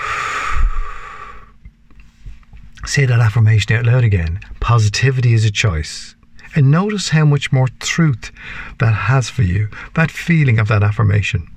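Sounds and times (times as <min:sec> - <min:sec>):
deep breath in and out during a guided tapping exercise: 0:00.0 - 0:01.6, 0:08.4 - 0:08.8
speech: 0:02.9 - 0:11.5.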